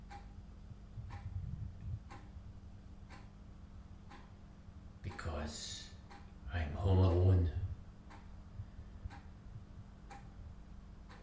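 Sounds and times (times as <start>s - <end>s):
clock ticking: 0.0s - 0.4s, 1.0s - 1.3s, 2.0s - 2.4s, 3.0s - 3.4s, 4.0s - 4.4s, 5.1s - 7.2s, 8.0s - 8.4s, 9.1s - 9.4s, 10.0s - 10.4s, 11.0s - 11.2s
low constant hum: 0.0s - 11.2s.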